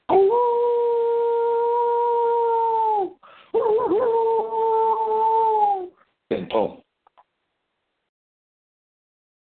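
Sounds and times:
man howling like a wolf: 0.1s - 5.9s
speech: 6.4s - 6.8s.

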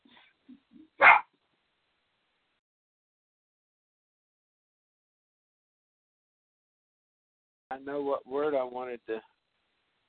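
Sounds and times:
dog barking: 1.0s - 1.3s
speech: 7.7s - 9.3s.

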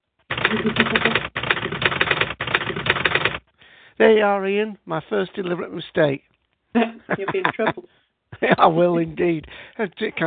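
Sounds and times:
rapid continuous typewriter clatter: 0.3s - 3.4s
speech: 0.5s - 1.3s, 4.0s - 10.2s
laughter: 6.8s - 9.4s.

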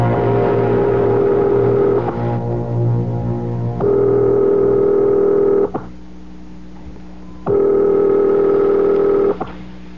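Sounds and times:
telephone line tone after dialing: 0.2s - 5.9s, 7.2s - 9.6s.

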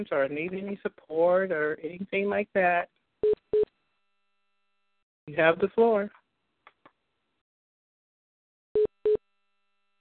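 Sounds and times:
speech: 0.0s - 3.8s, 5.3s - 6.2s
short electronic phone beeps: 3.2s - 3.7s, 8.8s - 9.2s.

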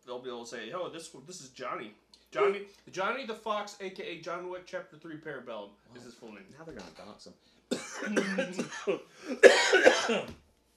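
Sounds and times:
speech: 0.2s - 10.4s
person coughing after inhaling spit down the windpipe: 7.7s - 10.4s.

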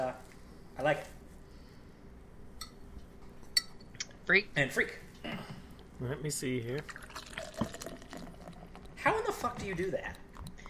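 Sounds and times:
speech: 0.8s - 1.1s, 4.3s - 5.1s, 6.0s - 7.0s, 9.4s - 10.2s
beer poured from a bottle into a glass: 6.8s - 10.6s.

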